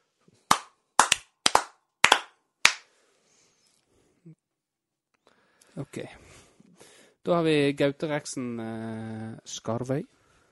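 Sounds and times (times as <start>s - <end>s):
small audience hand claps: 0.5s - 2.9s
speech: 5.8s - 6.2s, 7.2s - 10.2s.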